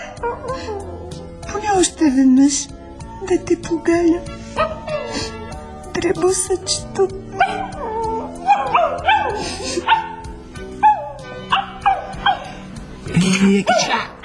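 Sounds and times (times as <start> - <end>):
speech: 1.8 - 4.7, 6.0 - 7.6, 13.2 - 14.1
small dog giving high-pitched yips and whiny barks: 7.4 - 10.2, 10.8 - 12.5, 13.7 - 14.2.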